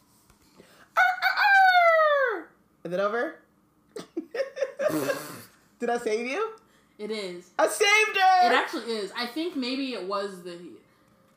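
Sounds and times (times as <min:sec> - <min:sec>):
rooster crowing: 0:01.0 - 0:02.5
speech: 0:02.8 - 0:04.0, 0:04.9 - 0:10.8.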